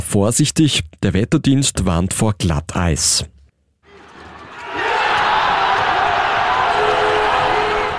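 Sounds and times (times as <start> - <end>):
speech: 0.1 - 3.3
packed handball arena crowd cheering after an equaliser: 3.9 - 7.9
shouts in handball arena crowd: 4.5 - 7.9.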